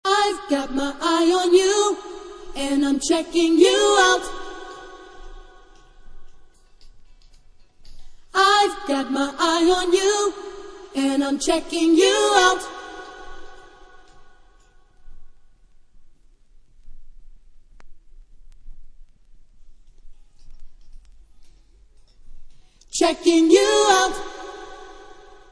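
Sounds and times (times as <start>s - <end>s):
background vocals: 0.0s - 6.1s, 8.4s - 14.6s, 22.9s - 25.5s.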